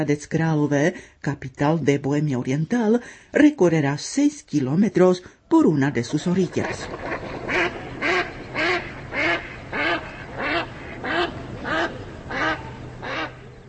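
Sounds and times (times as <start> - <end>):
speech: 0.0 - 7.8
low constant hum of water or noise: 0.0 - 13.6
duck quacking on choppy pond water: 6.6 - 13.6.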